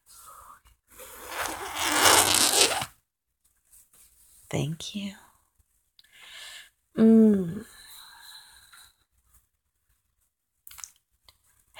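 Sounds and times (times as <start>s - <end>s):
side zipper of a dress being pulled up: 1.0s - 2.9s
speech: 4.5s - 5.2s.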